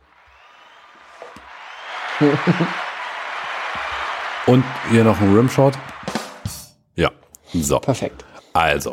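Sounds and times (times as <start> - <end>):
applause: 0.0 - 6.5
laughter: 1.9 - 5.8
speech: 2.2 - 2.8, 4.5 - 5.9, 7.0 - 8.9.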